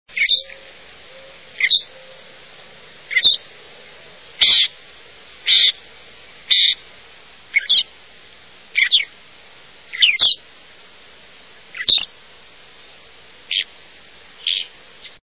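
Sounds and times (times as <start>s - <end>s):
Loggerhead Shrike: 0.2s - 2.2s, 3.1s - 3.5s, 4.4s - 4.8s, 5.4s - 5.8s, 6.5s - 6.8s, 7.5s - 7.9s, 8.8s - 9.1s, 9.9s - 10.4s, 11.7s - 12.2s, 13.5s - 13.7s, 14.4s - 15.2s.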